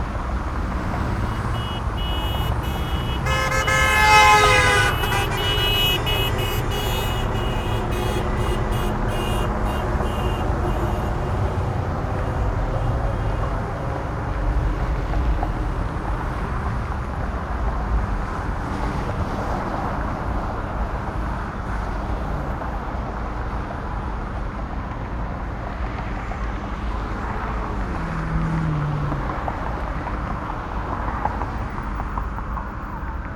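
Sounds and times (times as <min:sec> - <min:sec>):
urban traffic: 0:00.0 - 0:33.3
car horns at an urban special event: 0:00.8 - 0:14.0.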